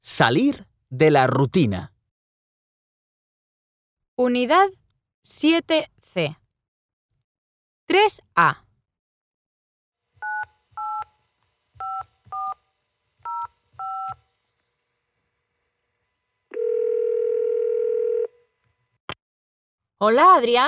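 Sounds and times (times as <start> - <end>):
speech: 0.0 - 1.9, 4.2 - 6.4, 7.9 - 8.6, 20.0 - 20.6
long steady telephone tone of an outgoing call: 16.5 - 18.5.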